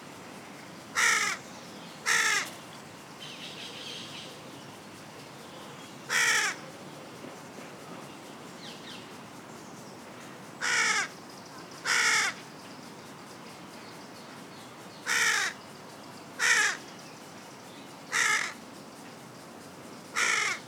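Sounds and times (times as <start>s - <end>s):
carrion crow Corvus corone cawing: 1.0s - 1.4s, 2.1s - 2.5s, 6.1s - 6.6s, 10.6s - 11.1s, 11.9s - 12.4s, 15.1s - 15.6s, 16.4s - 16.8s, 18.1s - 18.6s, 20.2s - 20.6s.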